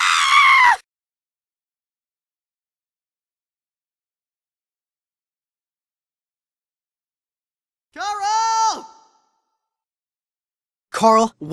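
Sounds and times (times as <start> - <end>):
loud shrill high-pitched scream: 0.0 - 0.8
speech: 11.0 - 11.5.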